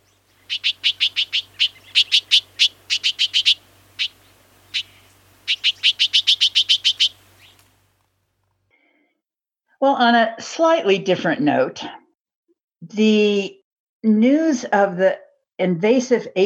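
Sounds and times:
bird warning call: 0.0 - 7.7
speech: 0.5 - 0.8, 9.8 - 12.0, 13.0 - 16.4.

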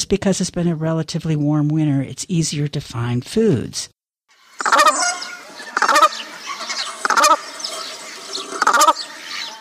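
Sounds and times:
speech: 0.1 - 4.0
brant goose calling soft and throaty: 4.6 - 9.5
chatter from other geese: 4.6 - 9.5.

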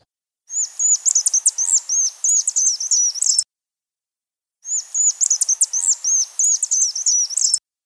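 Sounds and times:
several Vaux's swifts flying and calling together: 0.5 - 3.4, 4.6 - 7.6.

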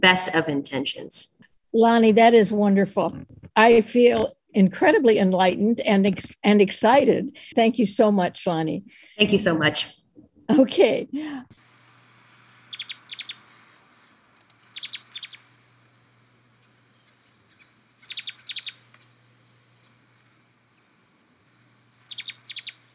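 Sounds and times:
speech: 0.0 - 11.6
quiet background hiss: 11.5 - 22.9
chestnut-backed chickadee calls with high buzzy scratchy notes: 11.6 - 22.9.

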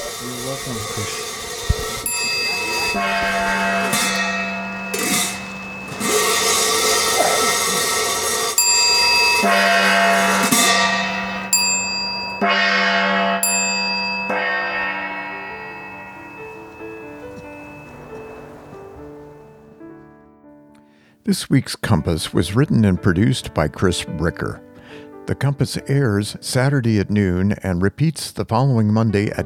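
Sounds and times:
gong being struck: 0.0 - 19.8
speech: 0.5 - 1.3, 2.9 - 3.6, 21.3 - 24.7, 25.3 - 29.4.

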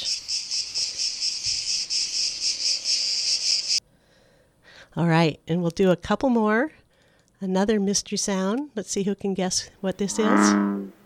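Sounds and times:
cicadas chirping: 0.0 - 3.8
speech: 5.0 - 6.8, 7.4 - 11.0.

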